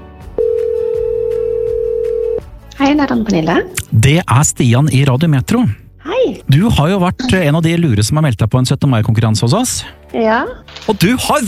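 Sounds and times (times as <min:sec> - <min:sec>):
telephone tone on an outgoing call: 0:00.4 - 0:02.4
speech: 0:02.8 - 0:11.4.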